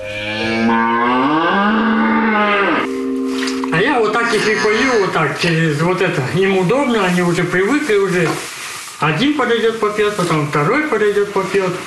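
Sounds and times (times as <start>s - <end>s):
cow mooing on a monastery farm: 0.0s - 5.2s
speech: 4.4s - 11.8s.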